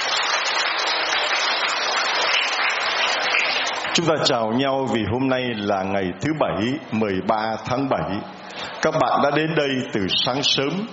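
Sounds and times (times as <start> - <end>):
warm audience applause: 0.0 - 4.2
speech: 4.0 - 10.9.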